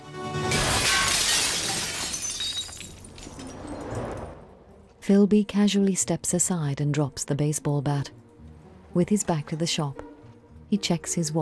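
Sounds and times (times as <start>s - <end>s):
large shop window glass pane smashed by baseball bat: 0.3s - 4.0s
glass shards tinkling and scattering to the ground: 0.5s - 4.4s
speech: 5.1s - 8.2s, 8.9s - 10.1s, 10.7s - 11.4s.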